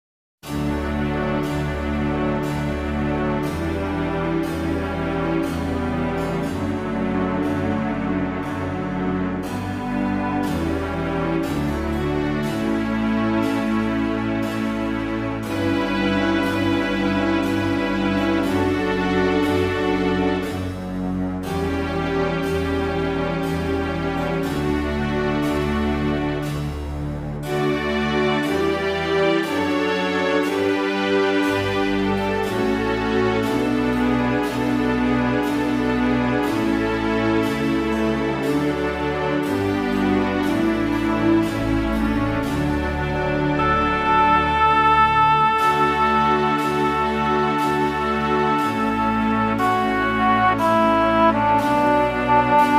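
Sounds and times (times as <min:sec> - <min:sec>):
low strings accompaniment in D major for vocal music: 0:00.4 - 0:52.7.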